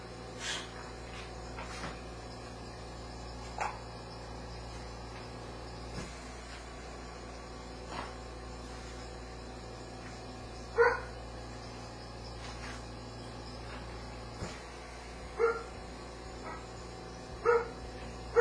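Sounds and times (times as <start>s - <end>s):
insects chirring: 0.0s - 18.3s
low hum: 0.0s - 18.3s
dog giving short barks: 10.8s - 11.1s, 15.4s - 15.7s, 17.4s - 18.3s.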